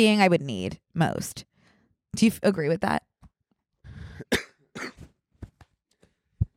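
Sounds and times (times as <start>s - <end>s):
speech: 0.0s - 1.5s, 2.1s - 3.1s
person coughing: 4.1s - 5.1s.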